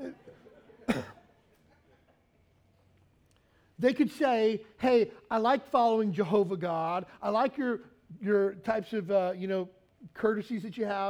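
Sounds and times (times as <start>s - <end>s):
cough from something stuck in the throat: 0.9s - 1.3s
speech: 3.8s - 11.0s.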